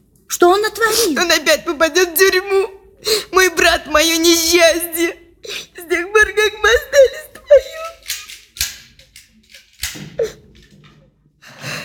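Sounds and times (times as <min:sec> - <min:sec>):
speech: 0:00.4 - 0:07.3
keys jangling and scraping in the lock of the front door: 0:07.6 - 0:10.8.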